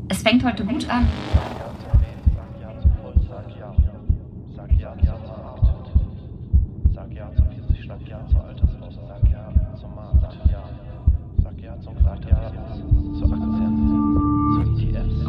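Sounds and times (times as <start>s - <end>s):
low continuous humming drone: 0.0s - 4.4s, 12.4s - 15.2s
speech: 0.2s - 1.6s
heartbeat thumping: 0.7s - 14.3s.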